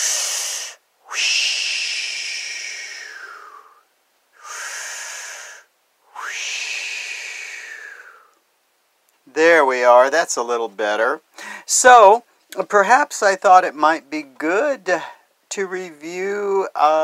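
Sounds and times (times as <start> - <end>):
slow breathing in and out during a relaxation exercise: 0.0 - 8.4, 11.3 - 11.7
speech: 9.4 - 17.0.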